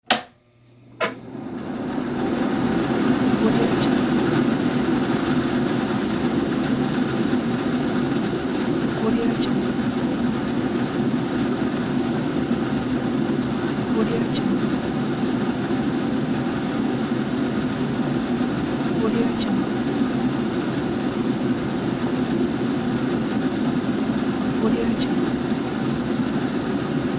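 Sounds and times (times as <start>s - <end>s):
bathroom exhaust fan running: 0.0s - 27.1s.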